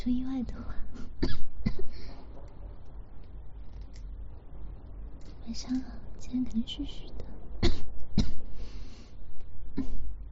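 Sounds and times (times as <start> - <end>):
speech: 0.0 - 1.5, 5.5 - 7.3, 9.8 - 10.0
sharp coughs: 1.1 - 2.0, 7.6 - 8.5, 9.7 - 10.2.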